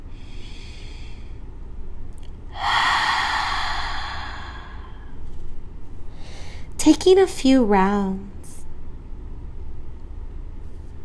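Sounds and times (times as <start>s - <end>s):
open-mouthed exhale during a yoga class: 0.1s - 1.4s, 2.5s - 5.2s
speech: 6.8s - 8.3s.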